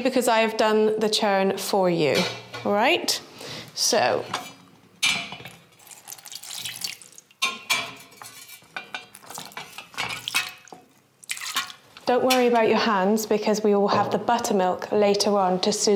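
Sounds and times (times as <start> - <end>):
speech: 0.0 - 4.5, 12.1 - 15.9
stirring sounds: 4.0 - 12.7
metal kitchen utensils clinking: 4.3 - 12.6
hot water pouring over metal kitchen utensils to scald them: 5.5 - 12.0.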